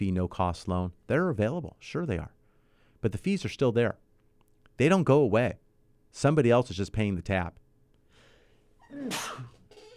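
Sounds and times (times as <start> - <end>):
speech: 0.0 - 2.4, 3.0 - 4.0, 4.8 - 7.6, 8.9 - 9.5
noise: 0.0 - 9.9
person with a cold sneezing: 8.8 - 9.6.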